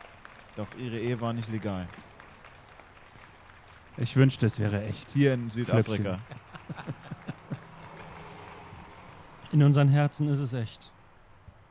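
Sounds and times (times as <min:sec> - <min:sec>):
faint applause from a group of people on balconies: 0:00.0 - 0:09.6
speech: 0:00.6 - 0:02.1, 0:04.0 - 0:07.0, 0:09.6 - 0:11.0
laughter: 0:04.1 - 0:08.5.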